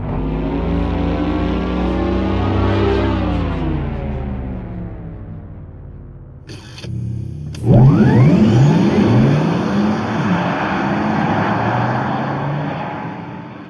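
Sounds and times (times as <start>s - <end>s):
synthetic electric car driving sound with smooth humming tone: 0.0s - 10.0s
synthetic electric car driving sound with futuristic spaceship-like whirring sweep: 0.0s - 13.6s.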